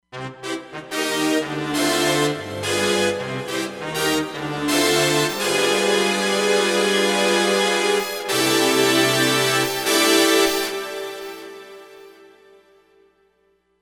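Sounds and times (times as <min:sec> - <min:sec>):
dynamic brass: 0:00.1 - 0:11.9.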